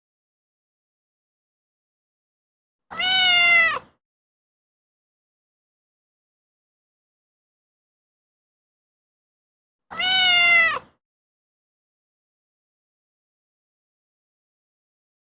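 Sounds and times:
cat meowing: 2.9s - 3.9s, 9.9s - 11.0s.

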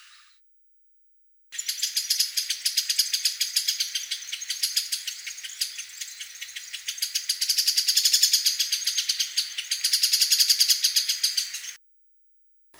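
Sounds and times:
dry rattling call: 1.5s - 11.7s.

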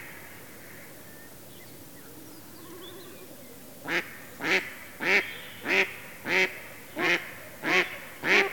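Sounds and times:
mallard loud nasal quacks: 3.9s - 8.5s.

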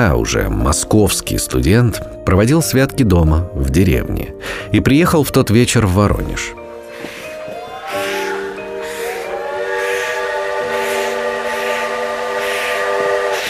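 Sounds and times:
speech: 0.0s - 6.6s
train horn blasts arriving at station: 8.2s - 13.4s.

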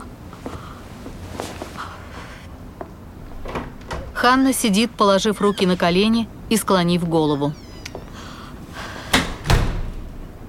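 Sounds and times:
door slamming shut behind someone leaving: 3.2s - 4.6s, 9.0s - 10.2s
speech: 4.2s - 7.6s.

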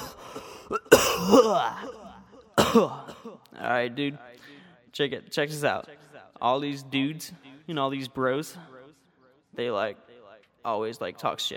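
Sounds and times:
person clearing throat: 0.0s - 3.4s
person coughing in harsh raspy bursts: 0.0s - 3.4s
speech: 0.7s - 2.0s, 2.7s - 4.3s, 5.0s - 8.7s, 9.6s - 10.0s, 10.6s - 11.5s.

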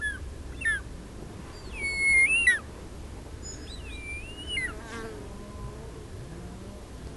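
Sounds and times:
Circaetus gallicus short-toed snake eagle whistling: 0.0s - 0.8s, 1.5s - 2.6s, 3.4s - 4.8s
low background noise: 0.0s - 7.1s.

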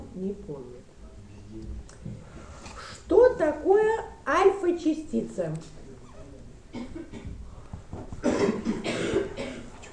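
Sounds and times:
speech: 0.2s - 0.9s, 1.5s - 2.2s, 3.4s - 5.8s
audience coughing: 6.7s - 7.4s, 8.2s - 9.9s.

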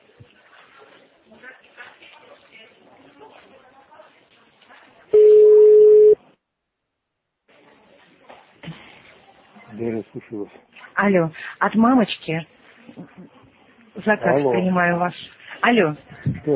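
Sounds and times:
telephone tone while redialing: 5.2s - 6.2s
speech: 9.8s - 12.6s, 14.0s - 16.5s.

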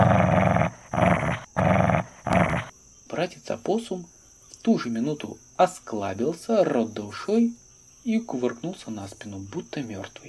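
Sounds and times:
dog snarling and growling aggressively: 0.0s - 2.7s
speech: 3.2s - 10.2s.

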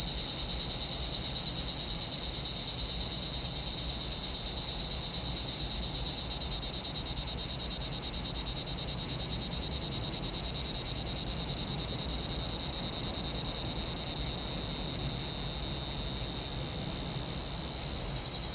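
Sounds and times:
cicadas buzzing in a pinewood: 0.0s - 18.5s.

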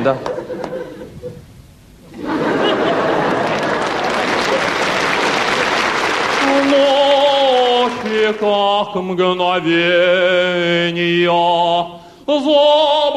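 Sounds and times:
speech: 0.0s - 0.3s, 8.1s - 13.1s
laughter: 0.0s - 1.4s, 2.1s - 6.7s
cheering: 2.2s - 8.0s
crowd applauding: 2.2s - 8.6s.

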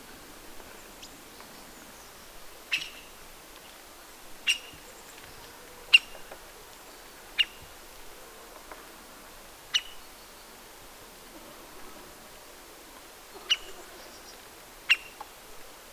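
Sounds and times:
Syrian woodpecker Dendrocopos syriacus sharp call notes: 2.7s - 3.2s, 4.4s - 4.9s, 5.9s - 6.3s, 7.4s - 7.7s, 9.7s - 10.0s, 13.4s - 15.2s.

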